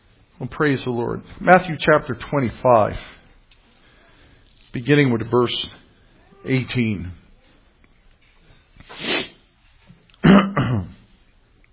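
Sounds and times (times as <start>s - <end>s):
speech: 0.4s - 3.2s, 4.7s - 5.8s, 6.4s - 7.2s
person clearing their throat: 10.2s - 11.1s.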